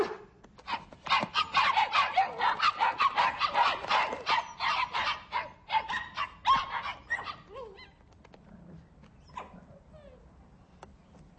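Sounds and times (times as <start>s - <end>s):
small high-pitched puppies barking and yapping: 0.7s - 7.9s.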